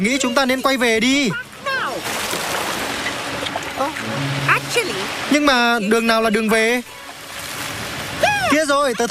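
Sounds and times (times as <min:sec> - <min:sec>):
speech: 0:00.0 - 0:02.2, 0:03.8 - 0:07.0, 0:08.5 - 0:09.0
choppy sea water sloshing and splashing against a boat: 0:01.0 - 0:09.0
brief gliding vocal tone: 0:04.0 - 0:05.4.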